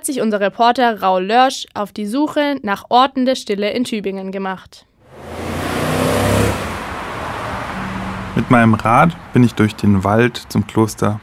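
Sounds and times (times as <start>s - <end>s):
speech: 0.0s - 5.3s, 8.4s - 11.2s
car passing in street traffic: 5.0s - 11.2s.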